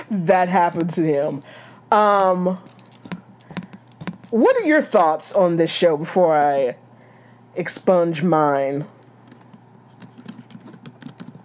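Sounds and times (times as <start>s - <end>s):
speech: 0.1s - 2.7s, 4.3s - 6.8s, 7.6s - 9.0s
fingers typing on a computer keyboard: 9.3s - 11.4s.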